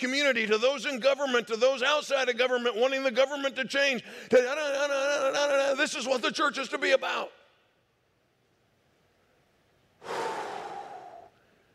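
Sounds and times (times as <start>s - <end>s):
speech: 0.0s - 7.4s
deep breath drawn by a preacher during a church sermon: 10.0s - 11.7s.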